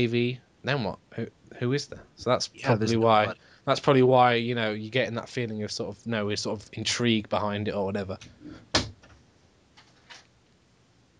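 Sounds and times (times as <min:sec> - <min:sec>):
speech: 0:00.0 - 0:08.6
faint clicks and light rattles of a settling door: 0:08.1 - 0:10.3
door being shut: 0:08.7 - 0:09.2.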